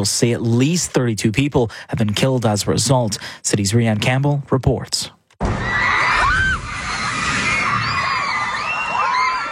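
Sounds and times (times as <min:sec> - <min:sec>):
speech: 0:00.0 - 0:05.6
crowd of children screaming in fear during an earthquake: 0:05.4 - 0:09.5.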